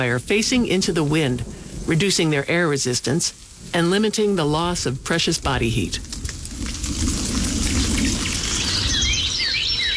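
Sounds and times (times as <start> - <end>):
speech: 0.0 - 6.2
heavy rain from a storm: 0.0 - 9.9
bird chirps: 8.2 - 9.9.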